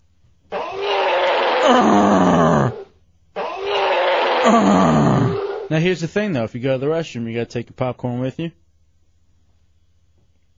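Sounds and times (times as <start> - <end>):
voice imitating a giant gorilla roar: 0.5 - 5.7
speech: 4.5 - 8.6.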